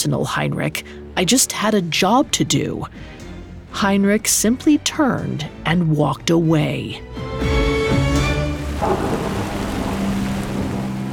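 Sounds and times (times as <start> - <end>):
speech: 0.0 - 7.4, 8.8 - 9.4
heavy rain pouring down in a storm: 8.0 - 11.1
deep roll of thunder: 8.7 - 11.1.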